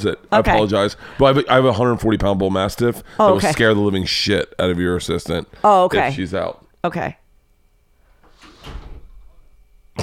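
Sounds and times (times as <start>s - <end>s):
speech: 0.0s - 7.2s
gate swinging open and banging shut: 8.4s - 9.2s.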